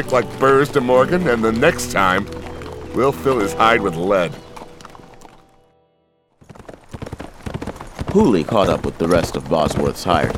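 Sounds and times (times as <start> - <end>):
speech: 0.0 - 4.4, 8.2 - 10.3
horse hooves galloping: 0.0 - 5.6, 6.4 - 10.3
low hum: 0.0 - 6.4.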